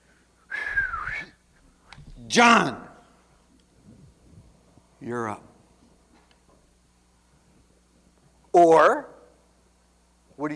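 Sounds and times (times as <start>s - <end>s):
breathy whistle attempt: 0.5s - 1.4s
speech: 2.3s - 2.8s, 5.0s - 5.5s, 8.5s - 9.1s, 10.4s - 10.5s.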